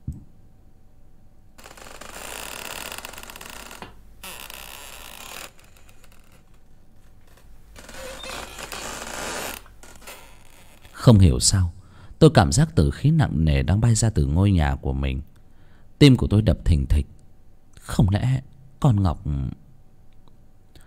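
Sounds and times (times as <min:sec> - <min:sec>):
half-open gate door creaking as it sways in the wind at night: 0:01.6 - 0:11.0
speech: 0:11.0 - 0:15.3, 0:16.0 - 0:17.2, 0:17.9 - 0:19.6.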